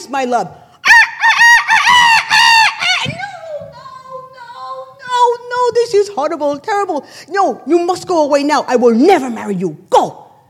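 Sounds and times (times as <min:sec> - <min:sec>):
speech: 0:00.1 - 0:00.6, 0:05.8 - 0:10.2
rooster crowing cock-a-doodle-doo: 0:00.8 - 0:03.1.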